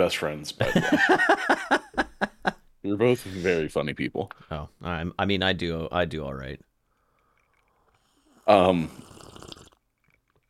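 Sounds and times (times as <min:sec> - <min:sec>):
speech: 0:00.0 - 0:01.8, 0:02.9 - 0:06.7, 0:08.5 - 0:09.1
laughter: 0:00.6 - 0:02.6
person taking a loud wet sip from a drink: 0:08.0 - 0:09.8.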